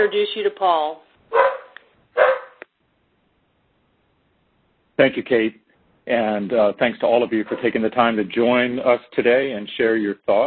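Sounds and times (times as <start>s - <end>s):
speech: 0.0s - 1.5s, 5.0s - 10.4s
dog barking with sharp yip: 1.3s - 2.6s, 7.4s - 7.8s.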